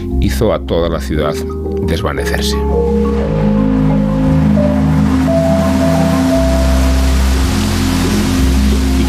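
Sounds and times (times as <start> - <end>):
speech: 0.4 - 3.5
low sustained droning ambient tones: 2.6 - 9.0
steady dense rain hissing: 2.8 - 9.0.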